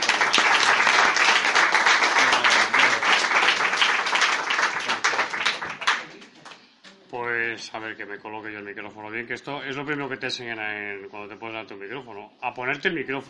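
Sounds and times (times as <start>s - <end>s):
audience applauding to welcome a speaker at a lecture: 0.0s - 6.6s
speech: 7.8s - 13.2s.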